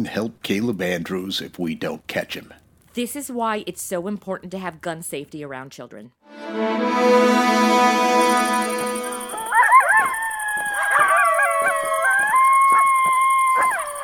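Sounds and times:
speech: 0:00.0 - 0:08.6
coyotes howling and yipping: 0:09.3 - 0:14.0.

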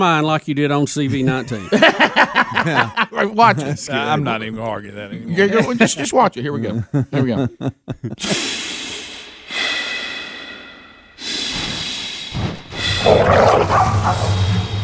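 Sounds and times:
speech: 0:00.0 - 0:08.8, 0:13.0 - 0:14.4
laughter: 0:01.1 - 0:04.4, 0:05.1 - 0:08.5
dogs barking and baying during a chase through woods: 0:13.2 - 0:14.5.

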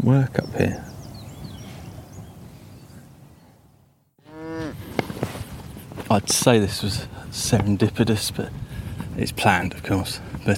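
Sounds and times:
speech: 0:00.0 - 0:00.9, 0:06.1 - 0:08.6, 0:09.2 - 0:10.5
outdoor rustle and breeze: 0:00.0 - 0:10.5
cow mooing in a field: 0:04.2 - 0:04.8.

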